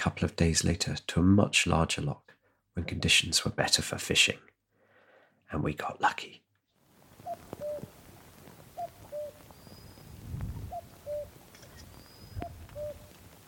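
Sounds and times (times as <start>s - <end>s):
speech: 0.0s - 4.5s, 5.5s - 6.4s
cuckoo calling: 7.2s - 13.4s.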